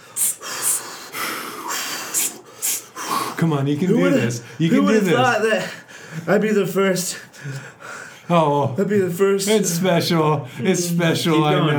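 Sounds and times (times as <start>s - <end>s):
heavy labored breathing of someone in labor at a hospital: 0.0s - 3.5s, 5.6s - 6.4s, 7.2s - 8.3s
speech: 3.4s - 11.7s.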